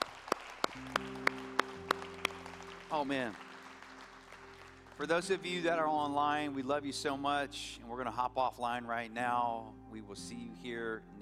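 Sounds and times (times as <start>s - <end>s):
church congregation clapping hands in a steady beat: 0.0s - 6.2s
speech: 2.9s - 3.5s, 5.0s - 11.2s.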